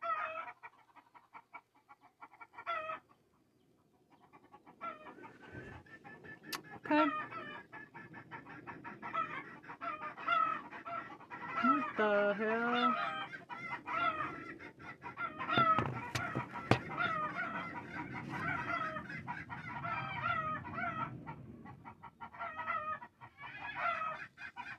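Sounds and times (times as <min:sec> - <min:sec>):
flock of agitated chickens clucking and squawking: 0:00.0 - 0:24.7
speech: 0:06.9 - 0:07.3, 0:12.0 - 0:13.2
sharp knocks: 0:15.6 - 0:17.1.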